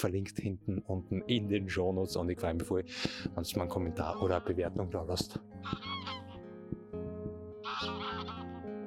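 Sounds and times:
speech: 0:00.0 - 0:06.2
flock of geese honking: 0:04.0 - 0:04.6, 0:05.6 - 0:06.5, 0:07.6 - 0:08.7.

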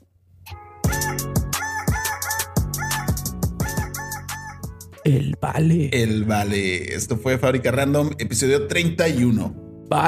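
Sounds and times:
pumping electronic beat with kick thumps: 0:00.5 - 0:05.1
rooster crow processed with pitch-correction: 0:01.0 - 0:04.8
speech: 0:01.1 - 0:01.4, 0:05.0 - 0:10.0.

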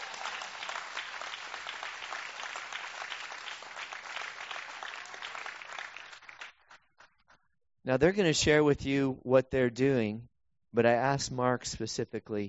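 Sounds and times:
roomful of people applauding: 0:00.0 - 0:07.1
speech: 0:07.9 - 0:12.4.

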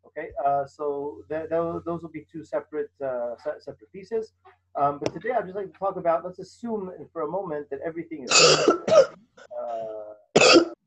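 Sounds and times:
brief voiced hum: 0:00.0 - 0:04.2, 0:04.8 - 0:10.1
speech: 0:00.2 - 0:10.7
participant coughing on a video call: 0:08.3 - 0:09.1, 0:09.7 - 0:10.7.

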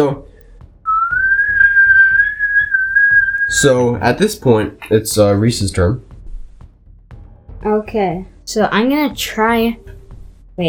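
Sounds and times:
speech: 0:00.0 - 0:00.3, 0:03.5 - 0:06.1, 0:07.6 - 0:10.0
person whistling a long rising note: 0:00.9 - 0:03.8.

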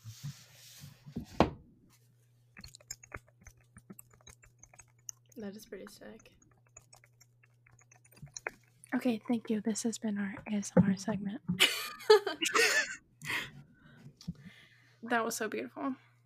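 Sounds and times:
typing on a computer keyboard: 0:02.6 - 0:08.5
speech: 0:05.4 - 0:06.4, 0:09.0 - 0:12.9, 0:15.0 - 0:16.1
laughter: 0:11.6 - 0:13.0.

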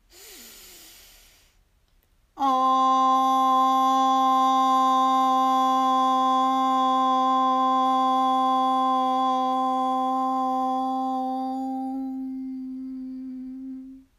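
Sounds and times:
deep inhale for a breathing and Om meditation exercise: 0:00.0 - 0:01.7
long steady held Om tone: 0:02.3 - 0:14.1.

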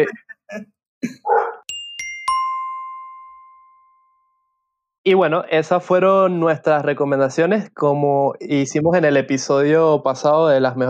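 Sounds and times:
speech: 0:00.0 - 0:01.5, 0:05.0 - 0:10.8
dog barking: 0:01.2 - 0:01.7
bright bell-like chimes: 0:01.7 - 0:04.8.

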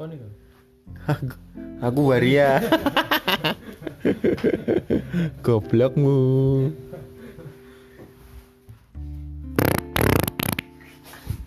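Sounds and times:
speech: 0:00.0 - 0:03.6, 0:04.4 - 0:06.8
laughter: 0:02.6 - 0:05.4, 0:06.8 - 0:07.8
fart: 0:09.6 - 0:10.7.

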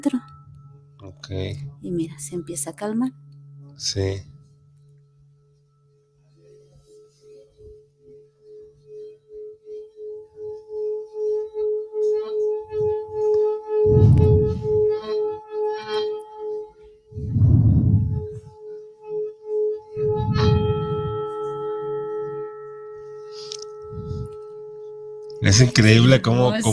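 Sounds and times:
speech: 0:00.0 - 0:00.3, 0:01.0 - 0:03.2, 0:03.8 - 0:04.3, 0:25.5 - 0:26.7
singing bowl rubbed clockwise around its rim ringing: 0:00.0 - 0:26.7
deep soft thumps: 0:13.9 - 0:14.7, 0:17.2 - 0:18.5.

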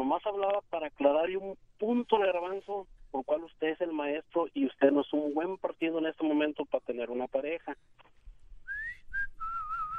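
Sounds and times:
speech: 0:00.1 - 0:08.2
person whistling: 0:08.6 - 0:09.9.

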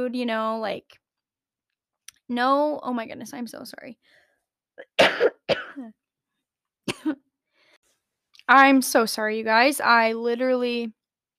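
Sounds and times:
speech: 0:00.0 - 0:01.0, 0:02.3 - 0:04.2, 0:04.8 - 0:06.0, 0:07.0 - 0:07.2, 0:08.5 - 0:11.0
harsh coughing: 0:04.8 - 0:06.0, 0:06.9 - 0:07.2.

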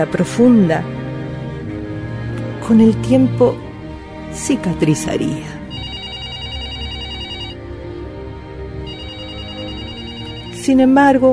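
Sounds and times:
speech: 0:00.0 - 0:01.0, 0:02.7 - 0:03.6, 0:04.3 - 0:05.5, 0:10.6 - 0:11.3
telephone ringing with bright trilling electronic tone: 0:05.7 - 0:07.6, 0:08.8 - 0:10.7.

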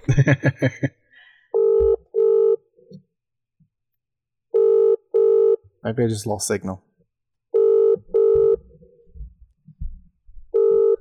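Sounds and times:
laughter: 0:00.0 - 0:01.0
speech: 0:00.1 - 0:01.0, 0:05.9 - 0:06.9
outgoing phone call ringing tone: 0:01.6 - 0:02.6, 0:04.5 - 0:05.6, 0:07.5 - 0:08.7, 0:10.5 - 0:10.9.

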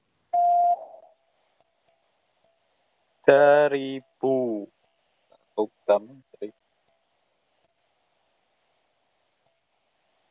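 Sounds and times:
electronic beep signalling time to answer a quiz question: 0:00.3 - 0:01.0
speech: 0:03.3 - 0:04.8, 0:05.6 - 0:06.6.

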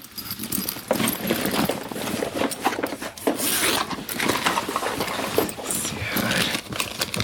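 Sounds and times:
rustling and clattering of a packed lunch being unwrapped: 0:00.0 - 0:07.2
paper crinkling: 0:01.9 - 0:07.2.

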